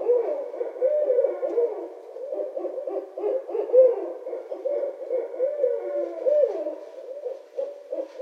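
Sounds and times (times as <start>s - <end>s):
barred owl hooting and cackling: 0.0s - 8.2s.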